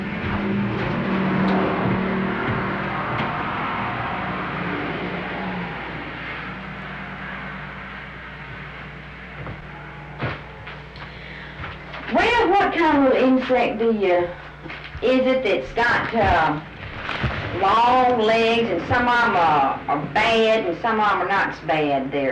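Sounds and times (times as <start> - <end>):
car driving past outside: 0.0 - 9.4
speech: 12.8 - 16.7, 17.6 - 22.3.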